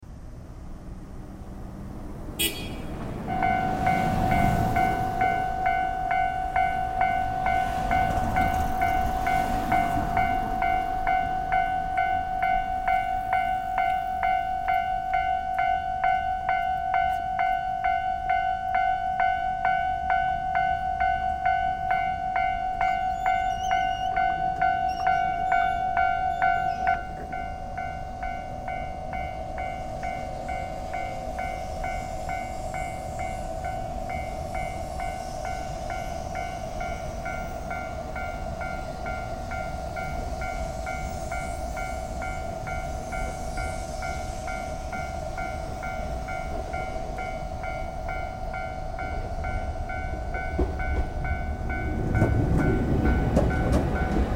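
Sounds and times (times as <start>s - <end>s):
trains passing: 0.0s - 54.3s.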